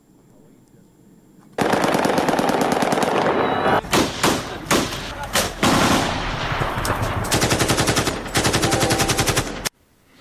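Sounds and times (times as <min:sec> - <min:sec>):
celebratory aerial automatic gunfire bursts after a cricket victory in Afghanistan: 0:01.6 - 0:09.7
sharp single celebratory aerial gunshots in Afghanistan: 0:02.7 - 0:09.7.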